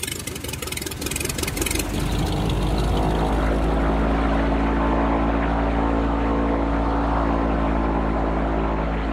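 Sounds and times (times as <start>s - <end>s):
turboprop airplane engines and propellers droning: 0.0s - 9.1s.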